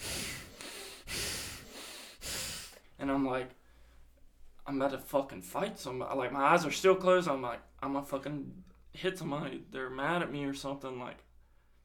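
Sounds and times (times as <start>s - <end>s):
person imitating heavy breathing: 0.0s - 2.9s
speech: 3.0s - 3.6s, 4.7s - 11.3s.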